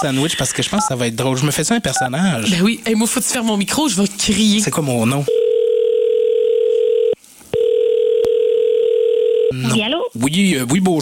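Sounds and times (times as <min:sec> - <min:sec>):
speech: 0:00.0 - 0:05.4, 0:09.5 - 0:11.0
telephone dial tone: 0:05.3 - 0:09.5.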